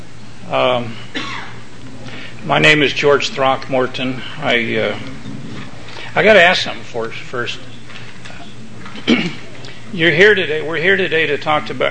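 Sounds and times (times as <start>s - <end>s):
speech: 0.5s - 1.3s, 2.4s - 5.2s, 6.1s - 7.7s, 9.0s - 11.8s
person clearing throat close to a microphone: 8.9s - 9.8s.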